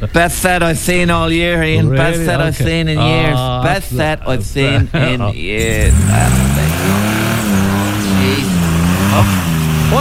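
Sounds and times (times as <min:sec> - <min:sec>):
speech: 0:00.0 - 0:06.9, 0:09.2 - 0:09.9
laughter: 0:01.4 - 0:09.9
car engine revving while stuck in mud: 0:04.7 - 0:09.9.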